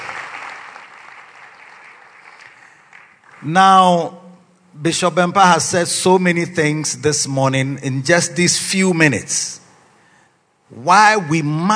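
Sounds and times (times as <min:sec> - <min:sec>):
audience clapping at a pastors' church conference: 0:00.0 - 0:03.5
speech: 0:03.4 - 0:04.2, 0:04.8 - 0:09.6, 0:10.7 - 0:11.7.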